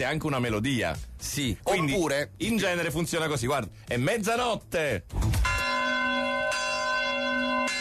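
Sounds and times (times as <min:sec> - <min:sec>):
speech: 0:00.0 - 0:05.2
automatic church bell tolling the hour: 0:05.4 - 0:07.7.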